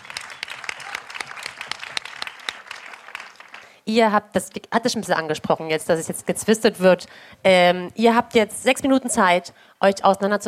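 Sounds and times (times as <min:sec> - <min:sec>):
audience applauding: 0:00.0 - 0:03.8
speech: 0:03.9 - 0:10.4.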